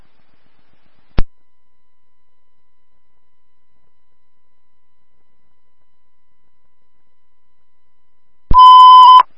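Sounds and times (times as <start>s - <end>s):
electronic dispatch radio alert tone: 8.5s - 9.2s.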